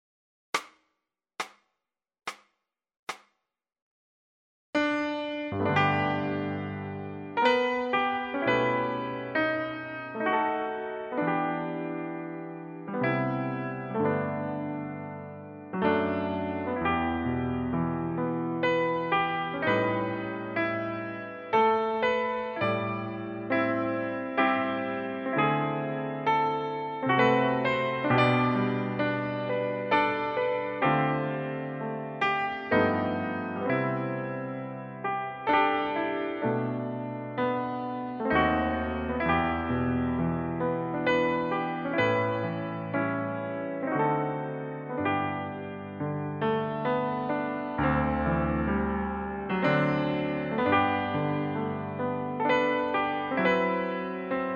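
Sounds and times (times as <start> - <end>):
piano solo: 4.8 - 54.5.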